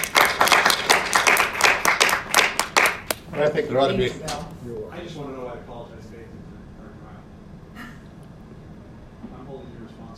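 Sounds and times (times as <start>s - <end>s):
crowd applauding: 0.0s - 3.3s
speech: 3.4s - 6.4s.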